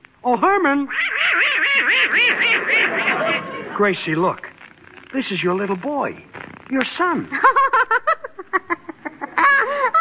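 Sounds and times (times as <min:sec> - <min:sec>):
speech: 0:00.2 - 0:04.5, 0:05.1 - 0:09.6
duck quacking: 0:01.0 - 0:03.8
laughter: 0:02.1 - 0:04.2, 0:07.3 - 0:10.0.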